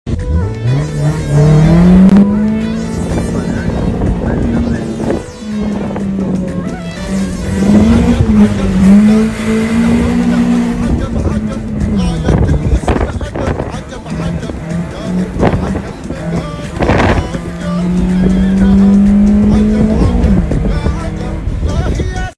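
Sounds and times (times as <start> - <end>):
Bee engine exhaust: 0.1 - 22.3.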